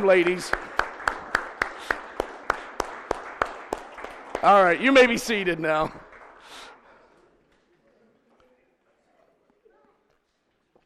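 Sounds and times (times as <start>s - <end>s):
speech: 0.0s - 0.7s, 4.4s - 6.0s
men of a church audience clapping in unison: 0.0s - 7.2s.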